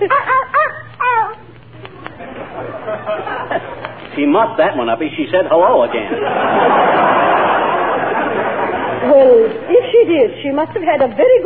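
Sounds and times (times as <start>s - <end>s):
laughter: 0.0s - 1.4s, 2.0s - 4.1s, 5.8s - 10.3s
small dog yapping: 0.0s - 1.6s
speech: 4.2s - 7.2s, 9.0s - 11.4s.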